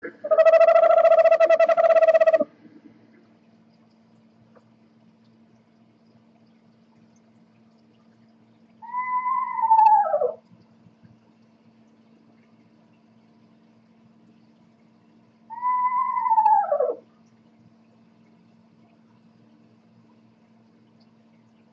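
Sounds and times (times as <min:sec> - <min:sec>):
faint low hum: 0:00.0 - 0:21.7
eastern screech owl trilling and whinnying: 0:00.2 - 0:02.5, 0:08.8 - 0:10.4, 0:15.5 - 0:17.0.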